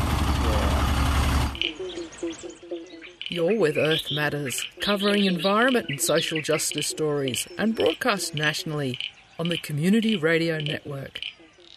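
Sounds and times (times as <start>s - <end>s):
truck engine idling during boat loading: 0.0s - 1.7s
quiet intermittent tones: 0.6s - 11.7s
speech: 3.3s - 11.4s.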